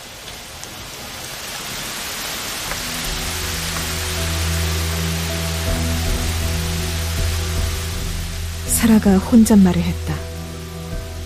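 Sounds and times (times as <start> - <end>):
steady rain pouring: 0.0 - 11.2
low rumbling drone: 2.7 - 11.2
speech: 8.8 - 10.3.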